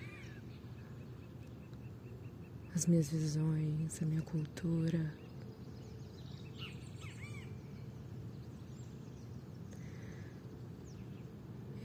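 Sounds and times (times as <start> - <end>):
several birds chirping and trilling: 0.0 - 11.8
steady low rumble of outdoor ambience: 0.0 - 11.8
speech: 2.8 - 5.2.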